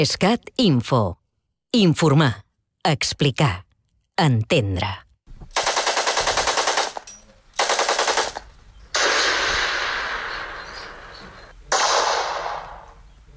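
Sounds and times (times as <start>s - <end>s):
speech: 0.0s - 3.6s, 4.2s - 5.0s
machine gun fire in Spanish Civil War reenactment: 5.5s - 11.0s, 11.7s - 13.3s.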